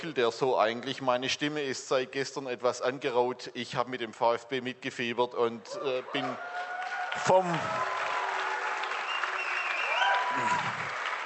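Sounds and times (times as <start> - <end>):
speech: 0.0 - 8.0
crowd noise: 5.6 - 11.2
scattered clapping: 6.5 - 11.2.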